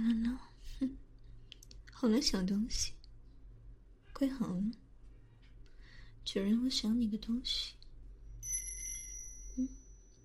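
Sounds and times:
speech: 0:02.0 - 0:03.0, 0:04.2 - 0:04.8, 0:06.3 - 0:07.8, 0:09.6 - 0:09.8
small bell on a pink pet collar jingling: 0:08.4 - 0:10.2.

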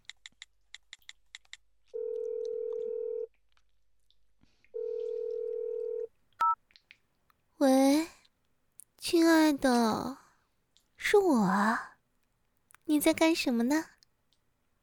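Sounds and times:
long phone ringing tones: 0:02.0 - 0:03.3, 0:04.8 - 0:06.6
phone key beeps as a phone number is dialed: 0:04.9 - 0:06.6
speech: 0:09.5 - 0:10.2, 0:11.1 - 0:11.9, 0:13.0 - 0:13.9.

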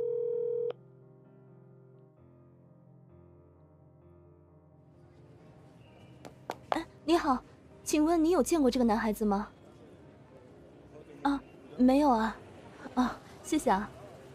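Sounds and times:
unanswered telephone ringback tones: 0:00.0 - 0:00.7
loud electronic telephone tone: 0:00.0 - 0:00.8
speech: 0:06.8 - 0:09.6, 0:11.8 - 0:12.4, 0:13.0 - 0:14.0.

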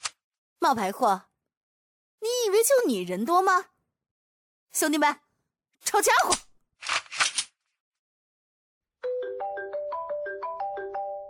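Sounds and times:
speech: 0:00.6 - 0:01.3, 0:02.5 - 0:03.7, 0:04.7 - 0:05.2, 0:05.8 - 0:06.4
mobile phone ringtone electronic melody: 0:09.0 - 0:11.2.

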